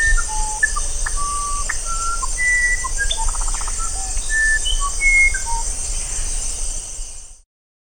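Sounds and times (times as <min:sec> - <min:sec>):
musician wren song of pure whistled tones and a buzzy trill: 0:00.0 - 0:06.2
continuous high-pitched insect noise: 0:00.0 - 0:07.4.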